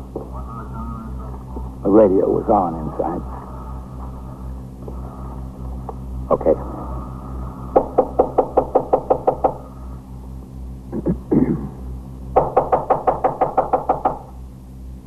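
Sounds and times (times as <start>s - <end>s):
speech: 1.9s - 3.4s, 6.3s - 6.8s
axes pounding on a fourth-floor apartment door: 7.7s - 9.7s, 12.3s - 14.4s.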